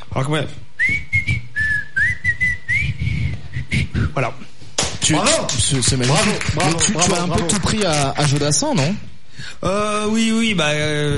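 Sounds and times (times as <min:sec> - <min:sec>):
speech: 0:00.2 - 0:01.1, 0:04.2 - 0:04.5, 0:05.1 - 0:11.1
person whistling a short tune: 0:00.8 - 0:04.1.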